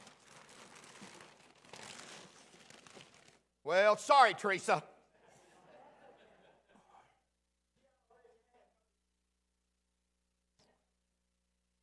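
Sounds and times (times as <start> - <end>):
paper being crumpled: 0.0 - 3.4
speech: 3.7 - 4.9
laughter: 5.1 - 6.8.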